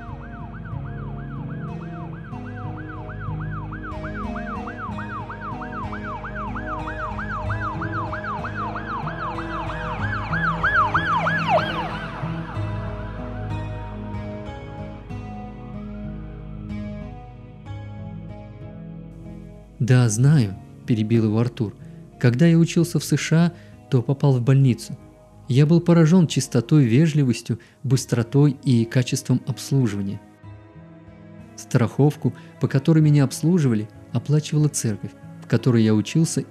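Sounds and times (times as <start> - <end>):
ambulance siren yelping: 0.0 - 14.2
speech: 19.9 - 30.3, 31.6 - 36.4.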